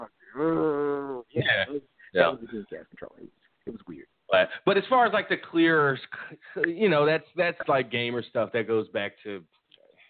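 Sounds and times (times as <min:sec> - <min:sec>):
person imitating the cow sound of a farm-animal toy: 0:00.0 - 0:01.4
speech: 0:01.4 - 0:03.4, 0:04.3 - 0:09.6.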